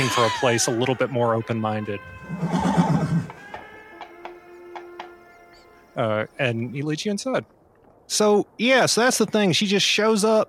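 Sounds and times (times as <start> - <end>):
speech: 0.0 - 2.8, 6.0 - 10.4
horse whinnying: 1.9 - 5.5
horse hoof clops: 2.9 - 5.7.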